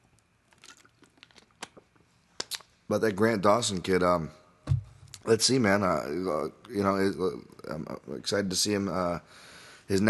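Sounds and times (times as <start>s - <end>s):
faint crinkle of a bottle: 0.5s - 2.7s
soft wet mouth clicks sipping water: 0.5s - 2.8s
speech: 2.9s - 4.4s, 5.2s - 10.0s.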